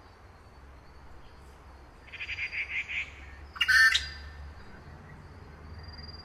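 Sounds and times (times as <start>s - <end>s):
grey treepie calling at Yushan: 2.1s - 4.3s.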